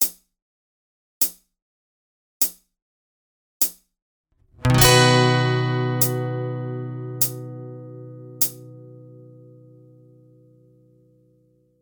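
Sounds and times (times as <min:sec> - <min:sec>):
guitar strumming whole notes with capo on fourth fret: 0:04.5 - 0:11.4.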